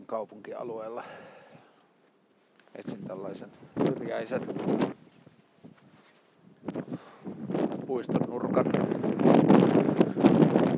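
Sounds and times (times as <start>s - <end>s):
speech: 0.1s - 1.4s, 2.8s - 5.0s, 6.6s - 7.0s, 7.9s - 9.4s
strong wind buffeting the microphone: 2.9s - 10.7s.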